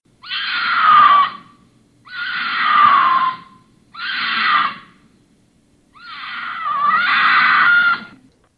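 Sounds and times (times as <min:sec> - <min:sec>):
female wild cat mating scream: 0:00.2 - 0:05.0, 0:05.9 - 0:08.2.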